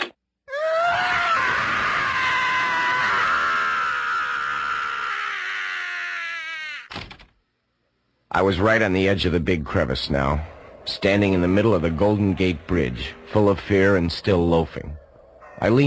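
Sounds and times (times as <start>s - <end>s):
man screaming: 0.5s - 6.9s
speech: 8.4s - 15.0s, 15.6s - 15.8s.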